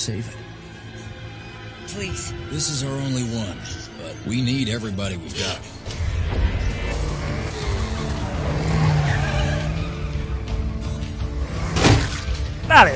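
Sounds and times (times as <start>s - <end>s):
speech: 0.0s - 0.6s, 1.9s - 6.5s, 12.7s - 12.9s
video game car engine roaring while running down zombies: 5.6s - 12.9s
video game car tires squealing and skidding: 6.6s - 12.9s.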